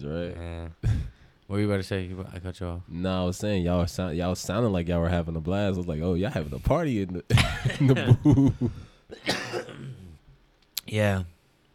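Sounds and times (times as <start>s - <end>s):
speech: 0.0s - 0.9s, 1.5s - 9.4s, 10.9s - 11.3s
person coughing after smoking: 7.3s - 8.1s, 9.1s - 10.2s
person clearing throat after smoking: 9.1s - 10.2s.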